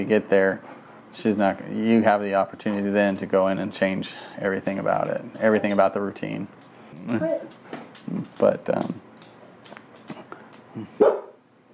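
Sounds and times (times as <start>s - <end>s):
speech: 0.0s - 9.0s, 10.8s - 11.1s
dog yipping and barking: 11.0s - 11.4s.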